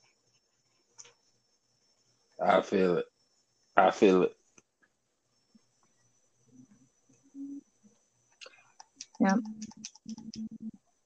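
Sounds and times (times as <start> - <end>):
low voices talking: 2.4 - 3.0, 3.8 - 4.3, 9.2 - 10.7
speech: 2.4 - 3.1, 3.8 - 4.4, 9.2 - 10.8
computer keyboard typing: 8.8 - 10.7.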